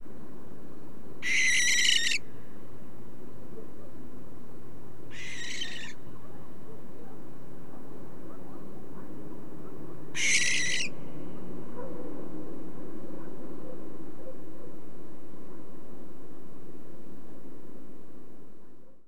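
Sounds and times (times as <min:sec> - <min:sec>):
adult Madeira barn owl mobbing screams: 0:01.2 - 0:02.2, 0:05.1 - 0:06.0, 0:10.2 - 0:10.9.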